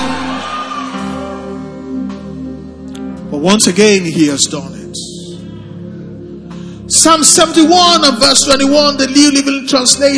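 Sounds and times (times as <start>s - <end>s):
audience shouting and cheering joyfully: 0.0s - 1.8s
speech: 3.4s - 5.1s, 6.9s - 10.1s.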